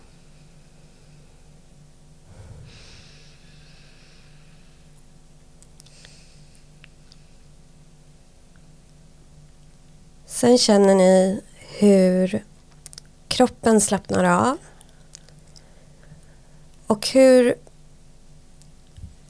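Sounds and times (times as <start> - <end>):
low steady hum: 0.0 - 19.2
short sharp breath drawn in through the nose: 2.3 - 4.9
speech: 10.4 - 12.5, 13.4 - 14.7, 16.9 - 17.6.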